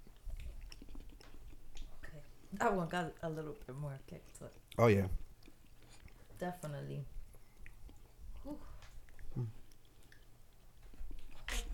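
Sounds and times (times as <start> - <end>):
person chewing food: 0.0 - 2.6, 3.6 - 6.4, 7.2 - 11.7
faint room hiss: 0.0 - 11.7
speech: 2.5 - 5.2, 6.4 - 7.2, 8.4 - 8.7, 9.4 - 9.6.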